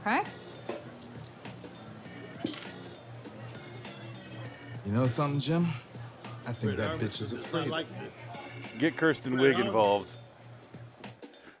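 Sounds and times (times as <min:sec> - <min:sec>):
car keys on a keychain jangling: 0:00.9 - 0:01.8
faint voices: 0:02.0 - 0:10.2
speech: 0:04.9 - 0:05.9, 0:06.5 - 0:10.2.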